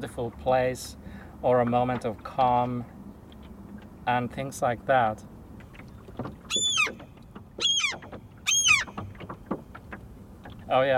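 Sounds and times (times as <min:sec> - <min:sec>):
speech: 0:00.0 - 0:03.0, 0:04.0 - 0:05.3, 0:10.7 - 0:10.9
low rumble of water and boat noise: 0:00.0 - 0:10.9
seagull calling: 0:06.4 - 0:09.3.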